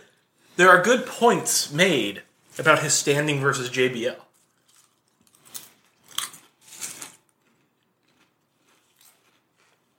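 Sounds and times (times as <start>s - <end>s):
speech: 0.6s - 4.3s
crunchy snack being chewed: 4.3s - 9.9s.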